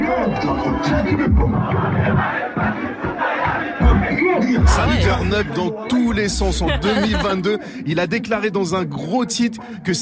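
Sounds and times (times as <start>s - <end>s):
large crowd cheering and chanting at a live concert: 0.0s - 7.5s
speech: 0.8s - 2.9s, 4.6s - 10.0s
laughter: 3.4s - 5.6s, 6.3s - 7.8s.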